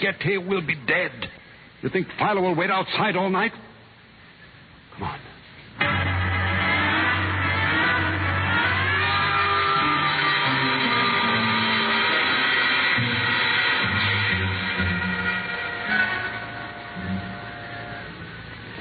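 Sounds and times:
speech: 0:00.0 - 0:03.7, 0:05.0 - 0:05.3
service elevator descending to basement with motor drone and whine: 0:05.8 - 0:18.7.

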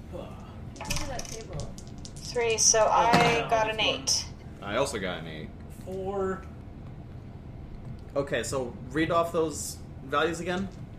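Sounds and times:
small dice rattling across a hard tabletop: 0:00.8 - 0:02.4
speech: 0:02.3 - 0:06.5, 0:08.2 - 0:10.8.

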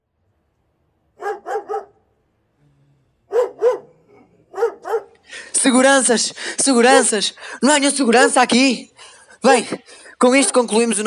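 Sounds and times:
dogs barking: 0:01.2 - 0:02.1, 0:03.3 - 0:05.2
speech: 0:05.6 - 0:11.0.

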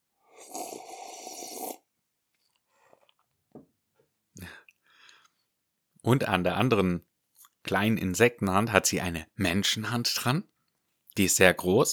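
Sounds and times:
voice imitating slurping tea from a teacup: 0:00.3 - 0:01.9
speech: 0:06.0 - 0:10.5, 0:11.2 - 0:11.9.

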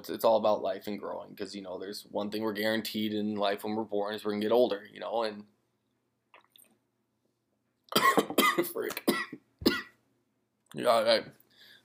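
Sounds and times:
speech: 0:00.0 - 0:05.5, 0:07.9 - 0:09.4, 0:10.7 - 0:11.4
harsh coughs: 0:07.9 - 0:10.0.

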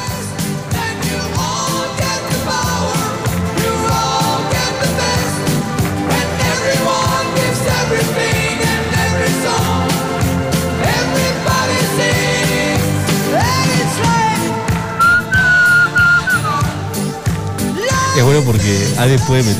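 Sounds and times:
loud upbeat pop music: 0:00.0 - 0:19.5
person whistling along to music: 0:15.0 - 0:16.8
speech: 0:18.3 - 0:19.5.

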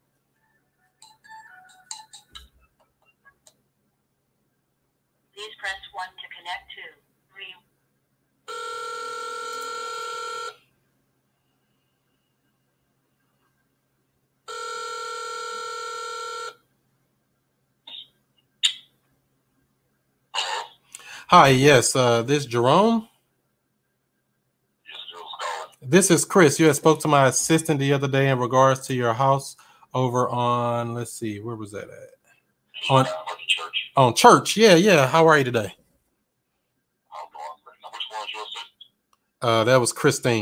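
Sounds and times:
phone dialing beeps and clicks: 0:01.0 - 0:02.5
outgoing phone call ringing tones: 0:08.5 - 0:10.6, 0:14.5 - 0:16.6
speech: 0:21.3 - 0:23.1, 0:25.9 - 0:32.2, 0:32.8 - 0:33.2, 0:34.0 - 0:35.8, 0:39.4 - 0:40.4.

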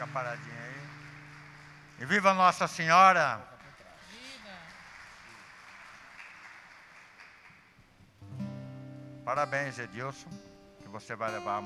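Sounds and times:
speech: 0:00.0 - 0:00.7, 0:02.0 - 0:03.5, 0:09.3 - 0:11.6
audience clapping: 0:00.0 - 0:08.0.

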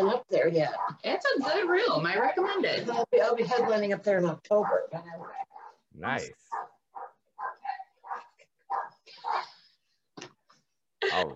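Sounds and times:
speech: 0:00.1 - 0:06.7, 0:11.0 - 0:11.3
dog barking: 0:00.7 - 0:02.8, 0:04.5 - 0:05.8, 0:06.5 - 0:09.6.

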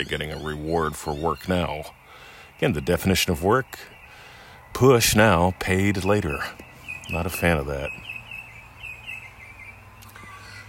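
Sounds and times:
speech: 0:00.0 - 0:02.0, 0:02.6 - 0:03.9, 0:04.7 - 0:08.0
birds singing with high chirps and warbling: 0:00.0 - 0:10.6
steady low outdoor hum: 0:00.0 - 0:10.6.

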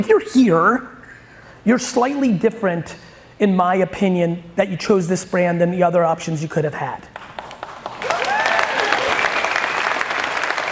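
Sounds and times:
speech: 0:00.0 - 0:01.0, 0:01.6 - 0:07.2
room full of people applauding: 0:07.4 - 0:10.7.

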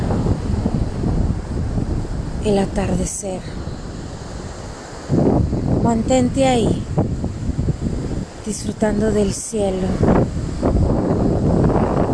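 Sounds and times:
steady wash of ocean surf: 0:00.0 - 0:12.1
person speaking calmly: 0:02.4 - 0:03.6, 0:05.8 - 0:06.9, 0:08.4 - 0:10.0
speech: 0:02.4 - 0:03.7, 0:05.8 - 0:07.2, 0:08.5 - 0:10.4.

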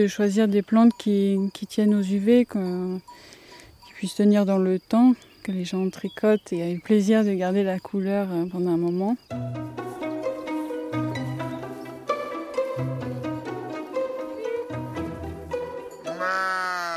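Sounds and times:
speech: 0:00.0 - 0:03.4, 0:04.0 - 0:09.8
steady instrumental music: 0:09.2 - 0:16.6
ewe raised for wool bleating: 0:16.1 - 0:16.9.

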